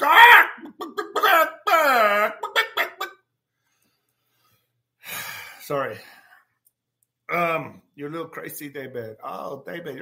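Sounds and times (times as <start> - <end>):
person mimicking chickens clucking: 0.0 - 3.2
speech: 5.7 - 6.2, 7.3 - 9.9.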